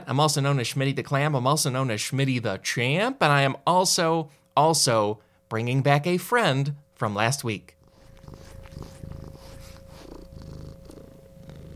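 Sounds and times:
speech: 0.1s - 8.4s
domestic cat purring: 7.6s - 11.7s.

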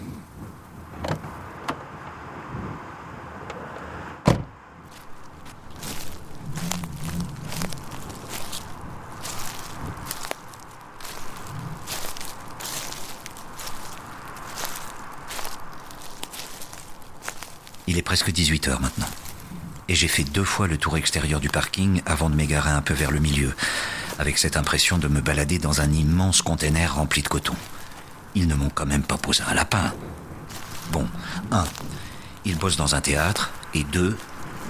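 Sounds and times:
continuous broadband hiss: 0.0s - 3.0s, 4.0s - 34.6s
car door latch clicking open: 3.4s - 4.6s
car door slamming shut in a parking lot: 4.2s - 4.6s
faint shuffling and movement: 4.9s - 34.6s
footsteps crunching on gravel or hard ground outdoors: 4.9s - 34.6s
speech: 18.0s - 19.2s, 19.9s - 27.7s, 28.4s - 30.1s, 30.9s - 31.8s, 32.4s - 34.3s.

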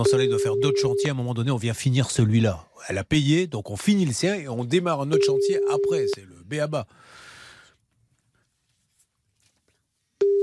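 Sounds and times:
telephone line tone while placing a call: 0.0s - 1.2s, 5.1s - 6.2s, 10.2s - 10.4s
speech: 0.0s - 7.2s.

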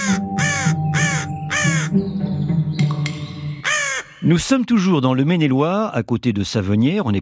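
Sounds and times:
crow cawing: 0.0s - 2.0s, 3.6s - 4.2s
bird chatter: 0.0s - 4.3s
speech: 4.3s - 7.2s.

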